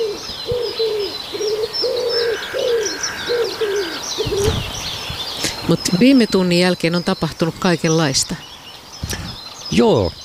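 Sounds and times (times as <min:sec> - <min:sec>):
common wood pigeon cooing after sunrise: 0:00.0 - 0:04.7
high chirps of other birds: 0:00.0 - 0:10.2
speech: 0:05.7 - 0:08.5, 0:09.1 - 0:10.2.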